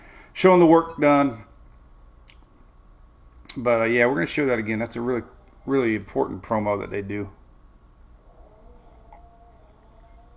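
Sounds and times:
speech: 0:00.4 - 0:01.5, 0:03.6 - 0:07.4
pet snoring: 0:08.2 - 0:10.3.

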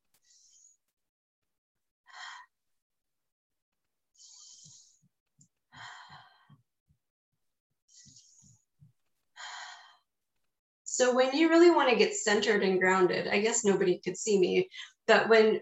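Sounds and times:
person breathing in through the nose and out through the mouth: 0:02.1 - 0:02.5, 0:04.2 - 0:05.1, 0:05.7 - 0:06.6, 0:07.9 - 0:08.6, 0:09.4 - 0:10.1
speech: 0:11.0 - 0:15.6.

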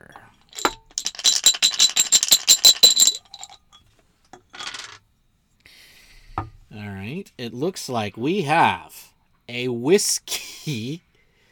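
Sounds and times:
four dice being rolled: 0:00.5 - 0:03.6, 0:04.6 - 0:05.0
speech: 0:07.4 - 0:11.1.

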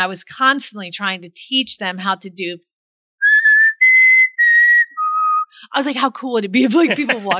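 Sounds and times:
speech: 0:00.0 - 0:02.7, 0:05.7 - 0:07.3
person whistling a tune: 0:03.2 - 0:05.6
laughter: 0:06.6 - 0:07.3.

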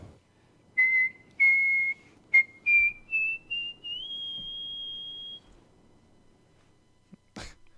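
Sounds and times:
person whistling a short melodic phrase: 0:00.8 - 0:05.5.

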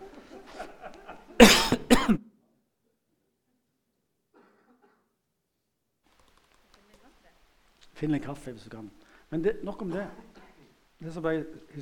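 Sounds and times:
laughter: 0:00.0 - 0:01.4
loud harsh coughs: 0:01.4 - 0:02.3, 0:04.4 - 0:05.2
speech: 0:08.0 - 0:10.4, 0:11.0 - 0:11.8.

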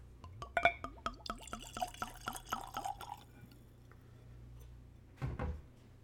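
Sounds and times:
whiskey glugging from a bottle into a Glencairn whiskey glass: 0:00.6 - 0:03.3.

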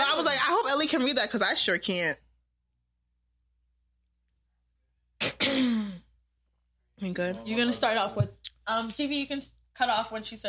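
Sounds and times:
speech: 0:00.2 - 0:02.2, 0:07.0 - 0:10.4
throat clearing: 0:05.2 - 0:06.1.

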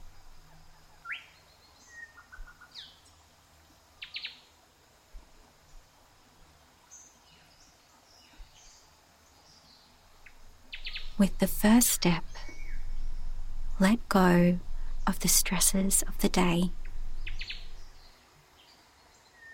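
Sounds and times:
native birds chirping in a rainforest: 0:10.2 - 0:18.1
speech: 0:11.2 - 0:12.3, 0:13.8 - 0:16.8.

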